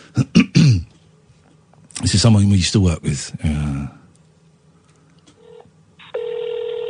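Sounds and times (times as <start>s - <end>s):
speech: 2.1s - 4.0s
outgoing phone call ringing tone to a phone abroad: 5.4s - 6.8s.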